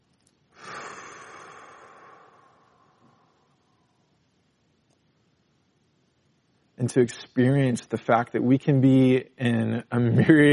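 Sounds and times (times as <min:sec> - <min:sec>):
long deep breath drawn in: 0:00.6 - 0:04.0
speech: 0:06.8 - 0:10.5.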